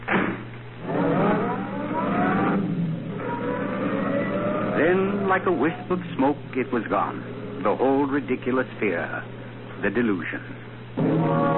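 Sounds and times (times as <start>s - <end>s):
roadster engine revving and pulling away: 0.8s - 7.6s
speech: 5.3s - 11.5s.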